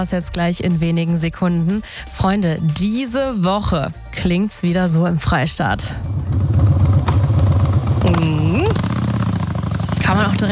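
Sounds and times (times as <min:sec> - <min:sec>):
speech: 0:00.0 - 0:06.2, 0:10.1 - 0:10.5
Harley-Davidson motorcycle engine idling at a Harley Days event in Dresden: 0:05.2 - 0:10.5.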